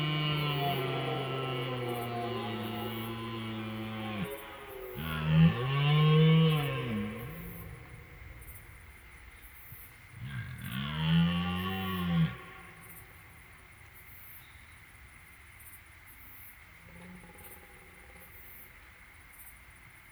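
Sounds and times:
red deer stag roaring during the rut in a riverside meadow in France at night: 0.0s - 8.8s, 10.2s - 13.2s.

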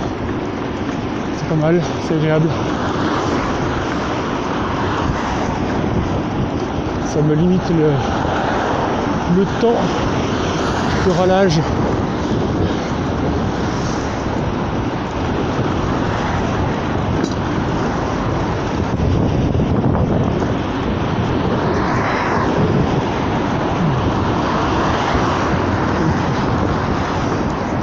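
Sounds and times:
steady loud road rumble: 0.0s - 27.8s
cars swishing past in the opposite direction: 1.3s - 27.8s
speech: 1.5s - 3.2s, 7.1s - 8.2s, 9.3s - 10.2s, 11.0s - 11.9s.

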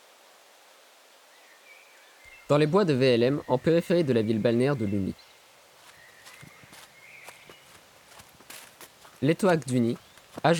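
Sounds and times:
speech: 2.5s - 5.3s, 9.2s - 10.5s
soft footfalls of someone jogging: 5.8s - 10.5s.

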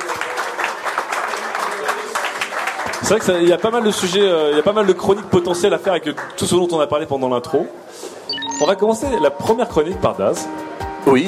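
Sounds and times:
audience applause during a talk show: 0.0s - 6.6s
speech: 3.0s - 11.2s.

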